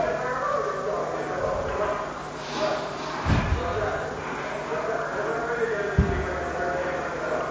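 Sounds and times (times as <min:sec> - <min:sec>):
voices: 0:00.0 - 0:07.5
batons hitting riot shields: 0:06.0 - 0:06.6.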